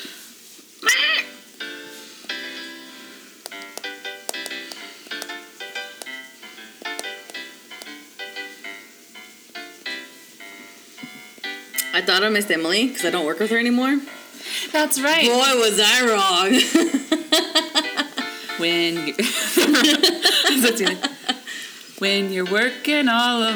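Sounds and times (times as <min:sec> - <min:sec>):
bright electronic keyboard synth playing a bouncy jingle-like run: 0:01.2 - 0:14.4
speech: 0:12.0 - 0:17.0, 0:18.6 - 0:21.2, 0:22.0 - 0:23.5
laughter: 0:14.5 - 0:21.8.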